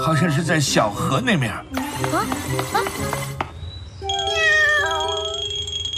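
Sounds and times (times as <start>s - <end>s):
speech: 0.0s - 3.4s
light music: 0.0s - 5.5s
kitten meowing: 4.2s - 5.4s.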